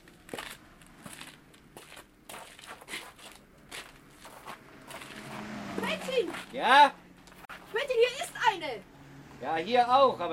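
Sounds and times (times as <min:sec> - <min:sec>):
footsteps of people walking across a field: 0:00.0 - 0:05.4
speech: 0:06.1 - 0:07.0, 0:07.9 - 0:10.3.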